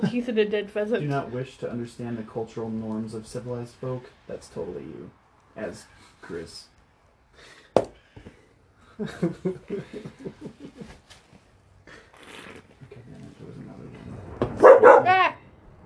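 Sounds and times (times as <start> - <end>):
speech: 0.0 - 6.7, 9.0 - 10.5
laughter: 8.9 - 11.0
dog barking: 14.6 - 15.2.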